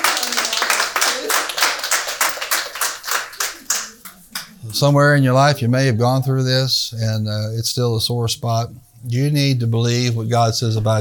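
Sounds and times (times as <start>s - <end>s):
audience clapping hands in a steady brisk rhythm: 0.0s - 4.6s
speech: 4.8s - 10.9s.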